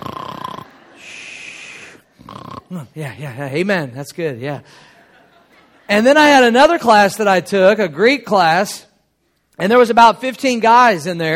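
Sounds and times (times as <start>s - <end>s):
person imitating snoring: 0.0s - 3.2s
laughter: 0.5s - 1.3s, 4.4s - 6.3s
speech: 2.7s - 4.9s, 5.9s - 8.9s, 9.6s - 11.3s.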